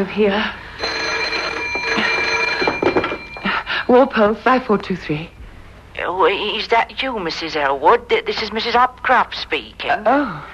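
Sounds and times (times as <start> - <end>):
speech: 0.0 - 0.6, 3.9 - 5.4, 6.0 - 10.5
telephone ringing on a bedside table: 0.7 - 4.5.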